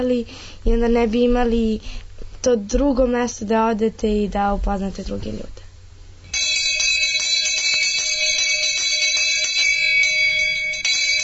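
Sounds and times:
speech: 0.0s - 5.6s
electric school bell ringing: 6.3s - 11.2s.

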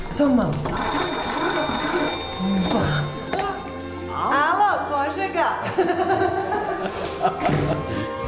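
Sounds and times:
speech: 0.1s - 1.2s, 2.4s - 3.0s, 5.3s - 8.2s
old dial-less crank telephone bell ringing at a former railway station master's post: 0.6s - 4.0s
laughter: 5.6s - 8.1s.

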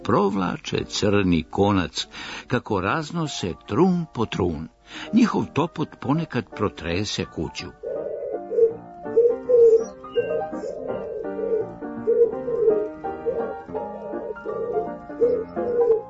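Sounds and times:
speech: 0.0s - 7.8s
pigeons cooing on a roof: 7.7s - 16.0s.

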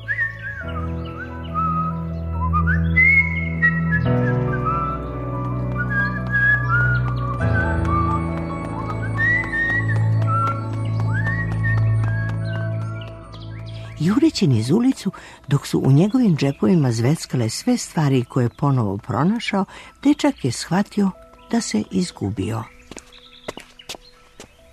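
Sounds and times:
person whistling a tune: 0.0s - 5.0s, 5.7s - 12.5s
speech: 14.1s - 22.8s.

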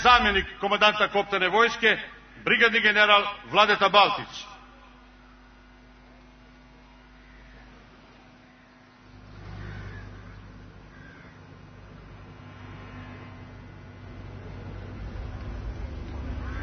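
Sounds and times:
speech: 0.0s - 4.5s
faint cawing bird calls: 7.2s - 11.6s, 16.4s - 16.6s
car engines rumbling as cars approach: 9.2s - 10.9s, 11.8s - 16.6s.

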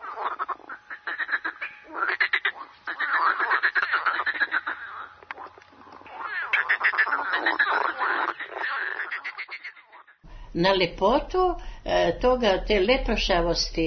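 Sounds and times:
frogs croaking: 0.0s - 10.3s
speech: 10.6s - 13.8s.

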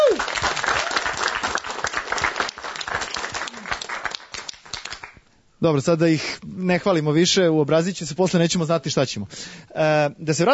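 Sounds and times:
audience clapping for a young drummer from a band: 0.0s - 5.2s
speech: 5.6s - 10.5s.

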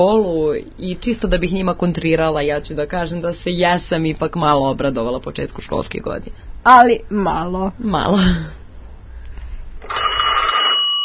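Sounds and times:
speech: 0.0s - 8.6s, 9.9s - 10.1s
telephone ringing with an electronic trill: 9.8s - 11.0s.

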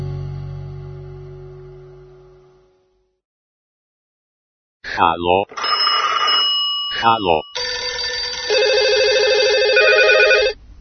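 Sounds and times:
speech: 5.0s - 5.7s, 7.0s - 7.6s
telephone ringing for an incoming call: 5.5s - 10.6s.

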